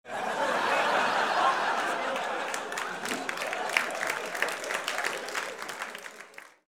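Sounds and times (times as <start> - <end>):
people laughing: 0.0 - 6.4
applause: 1.3 - 6.6.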